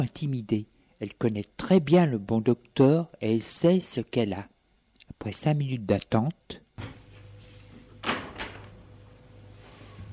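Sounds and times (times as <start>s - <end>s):
speech: 0.0s - 4.5s, 5.2s - 7.0s
faint low hum: 0.0s - 10.1s
door opening with sharp clunks: 8.0s - 8.8s.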